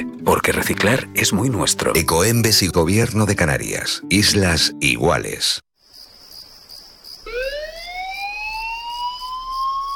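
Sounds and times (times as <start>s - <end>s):
speech: 0.0s - 5.7s
island fire brigade emergency alert siren wailing: 7.3s - 9.9s.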